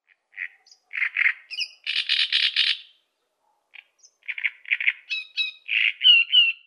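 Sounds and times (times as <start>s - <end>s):
great reed warbler Acrocephalus arundinaceus singing: 0.4s - 3.1s, 3.8s - 6.6s.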